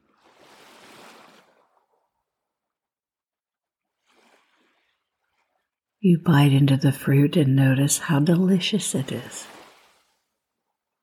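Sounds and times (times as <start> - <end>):
gentle ocean waves washing in and receding: 0.0 - 2.0, 3.9 - 10.3
speech: 6.0 - 9.6.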